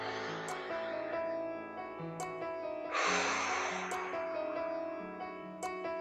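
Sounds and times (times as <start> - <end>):
deep breath in: 0.0 - 1.2, 2.9 - 4.4
calm music with faint chime-like accents: 0.0 - 5.9.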